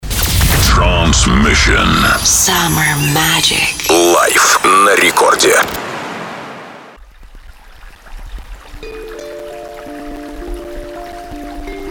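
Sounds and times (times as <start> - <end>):
speech: 1.1 - 5.8
rushing river water: 4.4 - 11.9
scattered water drips: 7.0 - 11.9.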